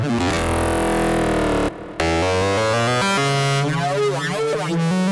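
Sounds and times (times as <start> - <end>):
Roland JP-8000 synthesizer feedback lead factory performance: 0.2 - 4.9.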